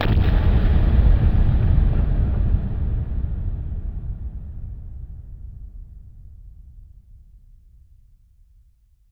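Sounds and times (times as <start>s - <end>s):
nuclear bomb explosion: 0.0s - 5.1s.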